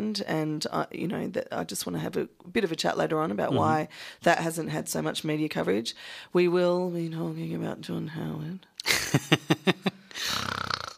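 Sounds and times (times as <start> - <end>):
speech: 0.1 - 9.9
voice imitating snoring: 3.5 - 3.8, 10.2 - 10.9.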